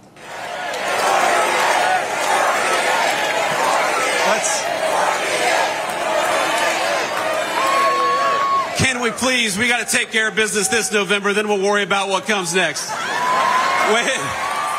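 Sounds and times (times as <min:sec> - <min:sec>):
large convention audience roaring and shouting in Dallas: 0:00.0 - 0:11.2, 0:12.1 - 0:14.7
convention audience cheering and chanting: 0:00.2 - 0:08.8
vice presidential speech: 0:04.2 - 0:04.6, 0:08.8 - 0:13.0, 0:13.8 - 0:14.4
speech: 0:09.1 - 0:13.1, 0:13.9 - 0:14.4.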